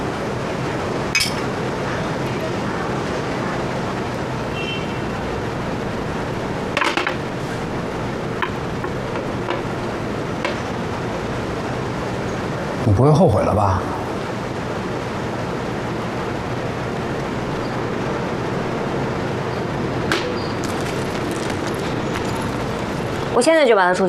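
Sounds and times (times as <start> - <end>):
busy din: 0.0 - 24.0
glasses clinking in a toast: 1.1 - 1.5
speech: 13.0 - 14.0, 23.4 - 24.0.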